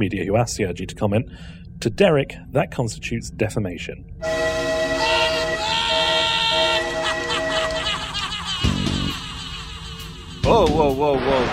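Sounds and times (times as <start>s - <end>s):
speech: 0.0s - 4.7s, 10.5s - 11.5s
train horn: 4.2s - 8.1s
laughter: 5.1s - 10.9s
deep swoosh: 11.0s - 11.5s.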